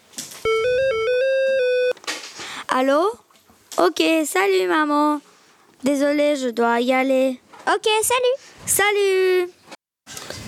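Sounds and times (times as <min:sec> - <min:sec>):
mobile phone ringtone for an incoming call: 0:00.4 - 0:02.0
speech: 0:02.8 - 0:03.2, 0:03.8 - 0:09.6.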